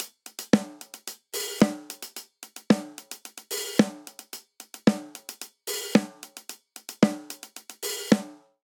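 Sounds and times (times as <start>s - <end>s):
disco hi-hat: 0.0s - 8.4s
classic disco snare drum: 0.0s - 8.6s.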